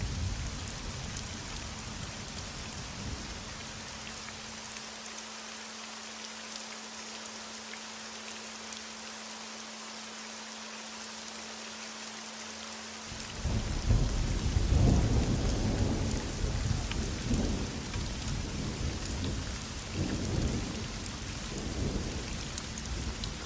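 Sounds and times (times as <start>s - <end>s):
steady rain in a thunderstorm: 0.0s - 23.4s
deep rumble of thunder: 13.2s - 23.4s.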